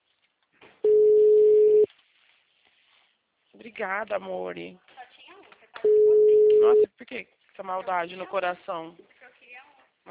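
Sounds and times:
faint rustle: 0.0 - 3.6
telephone tone as a call is placed: 0.8 - 1.9, 5.9 - 6.9
speech: 3.7 - 4.9, 6.6 - 9.1.

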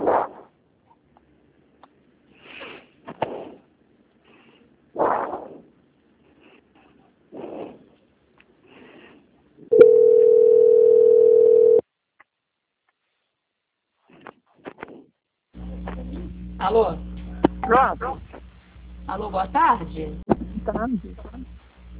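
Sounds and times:
steady telephone tone while a call is being transferred: 9.7 - 11.8
speech: 16.7 - 17.0, 17.8 - 18.2, 19.1 - 21.5.

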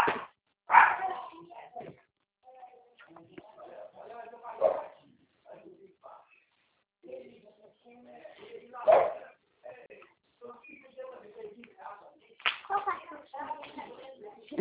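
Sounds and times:
small dog barking: 0.0 - 1.3, 4.6 - 5.0, 8.8 - 9.3
people chatting quietly: 0.7 - 14.5.

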